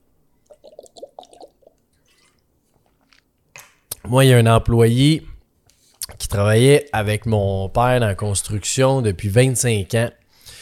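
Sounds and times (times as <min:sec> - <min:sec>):
person sipping and swallowing water: 0:00.4 - 0:03.3
speech: 0:04.1 - 0:05.3, 0:06.3 - 0:10.2.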